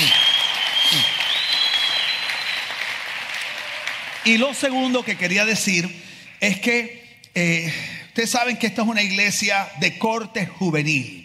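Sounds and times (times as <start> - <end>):
audience applauding: 0.0 - 6.5
speech: 4.2 - 11.2.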